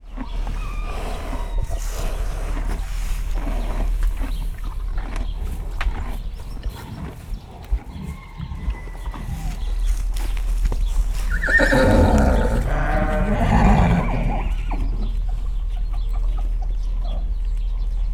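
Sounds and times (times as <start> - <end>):
sheep in a stable: 0.0 - 18.0.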